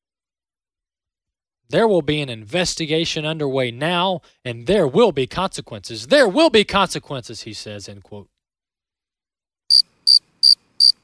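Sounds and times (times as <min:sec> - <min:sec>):
speech: 0:01.7 - 0:08.3
crickets chirping: 0:09.7 - 0:11.0.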